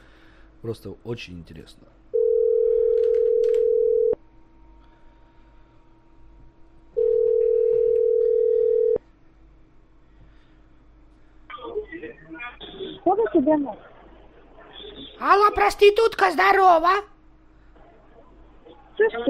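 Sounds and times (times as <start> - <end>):
faint noise: 0.0 - 19.2
speech: 0.6 - 2.0, 15.2 - 17.1, 19.0 - 19.2
telephone ringing tone while a number is being called: 2.2 - 4.2, 7.0 - 9.0.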